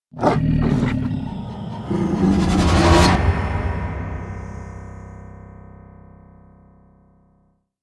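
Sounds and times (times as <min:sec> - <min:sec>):
lion roar cinematic stinger: 0:00.1 - 0:04.8.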